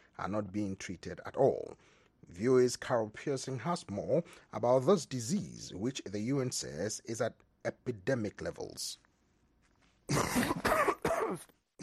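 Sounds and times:
speech: 0.2s - 9.0s, 10.1s - 11.8s
person coughing harshly: 10.1s - 11.8s.

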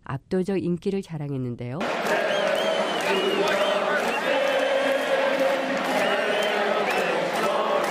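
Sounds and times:
speech: 0.1s - 2.3s, 3.1s - 3.9s
huge stadium crowd cheering before football game: 1.8s - 7.8s.

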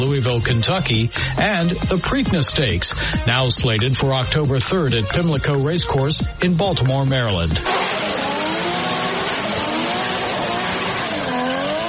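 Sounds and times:
speech: 0.0s - 8.2s
NASCAR stock car engine revving: 7.6s - 11.8s.

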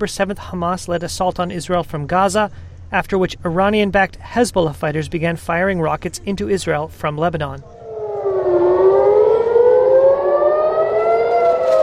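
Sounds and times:
speech: 0.0s - 7.8s
air raid siren blaring: 7.7s - 11.8s.

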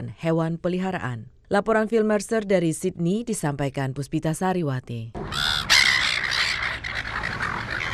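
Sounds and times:
speech: 0.1s - 5.4s
silver gulls squawking: 5.2s - 7.9s.

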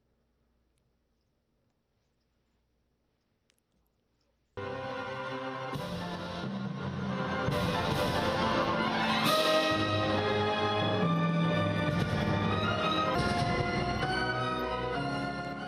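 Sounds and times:
violin in an after-work company orchestra: 4.6s - 15.6s.

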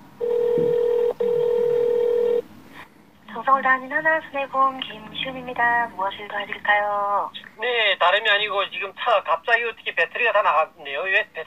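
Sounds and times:
telephone ringing tone on the line: 0.2s - 2.4s
speech: 3.6s - 11.4s.

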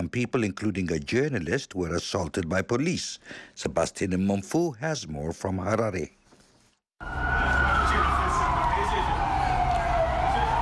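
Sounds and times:
speech: 0.0s - 6.2s, 7.0s - 7.6s
police water cannon vehicle siren wailing at a protest in Harare: 7.0s - 10.6s.

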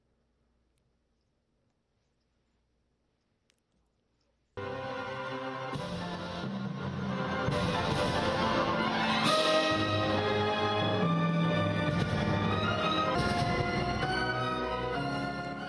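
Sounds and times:
trombones in a company orchestra: 4.6s - 15.6s
violins in a company orchestra: 4.6s - 15.6s.

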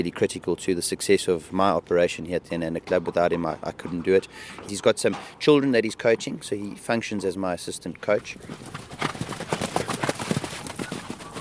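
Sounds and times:
speech: 0.0s - 9.2s
horses galloping around a dirt track: 8.0s - 11.3s.

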